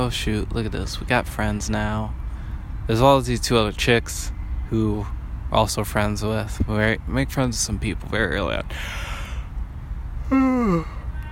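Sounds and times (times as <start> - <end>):
speech: 0.0 - 2.2, 2.9 - 9.1, 10.3 - 11.0
low steady rumble: 0.0 - 11.3
voiced yawn: 10.3 - 11.0.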